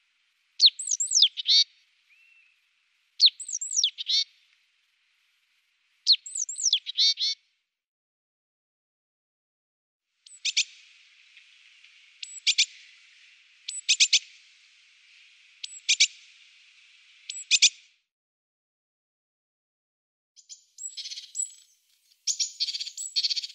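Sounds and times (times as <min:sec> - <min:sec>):
Eurasian blue tit calls: 0:00.6 - 0:02.5, 0:03.2 - 0:04.3, 0:06.1 - 0:07.4, 0:10.3 - 0:10.8, 0:12.2 - 0:12.9, 0:13.7 - 0:14.3, 0:15.6 - 0:16.2, 0:17.3 - 0:17.8, 0:20.4 - 0:23.5.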